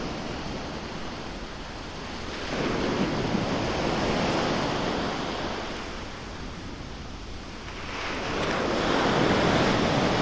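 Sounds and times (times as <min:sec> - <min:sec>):
ocean waves breaking on shore: 0:00.0 - 0:10.2.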